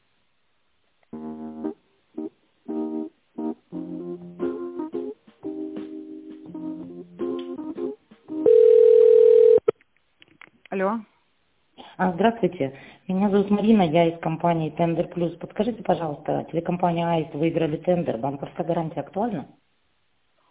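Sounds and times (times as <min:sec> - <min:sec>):
telephone ringing tone while a call is transferred: 0:08.4 - 0:09.7
speech: 0:10.8 - 0:11.1, 0:12.0 - 0:19.6.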